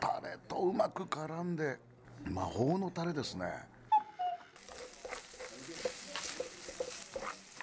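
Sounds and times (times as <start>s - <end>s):
speech: 0.4s - 3.8s
beef offal sizzling in a hot stone pot: 4.6s - 7.6s.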